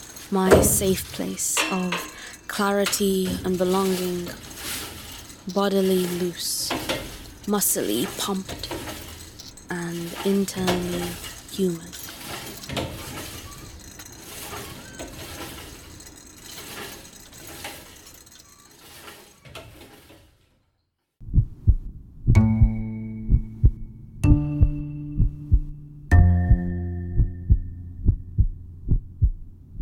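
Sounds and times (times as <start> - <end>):
metallic clanks and rattles of gym equipment in a reverberant room: 0.0 - 20.4
speech: 0.3 - 4.8, 5.5 - 6.6, 7.4 - 8.8, 10.2 - 11.9
steady deep heartbeat thumping: 21.2 - 29.8.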